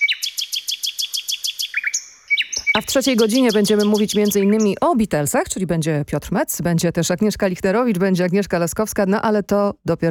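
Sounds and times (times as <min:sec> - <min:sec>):
bird chirping: 0:00.0 - 0:05.0
speech: 0:02.8 - 0:10.0.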